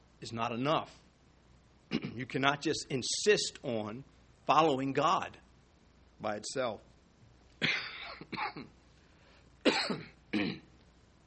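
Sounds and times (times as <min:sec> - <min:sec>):
speech: 0:00.2 - 0:01.0, 0:02.2 - 0:05.4, 0:06.2 - 0:06.9, 0:07.6 - 0:08.8
man coughing harshly: 0:01.9 - 0:02.2, 0:07.6 - 0:08.8, 0:09.6 - 0:10.7.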